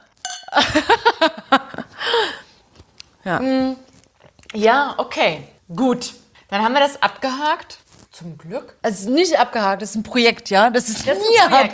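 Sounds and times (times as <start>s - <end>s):
glasses clinking in a toast: 0.1s - 1.0s
speech: 0.6s - 1.4s, 3.3s - 3.8s, 4.5s - 11.7s
burst of rhythmic laughter: 0.6s - 2.0s.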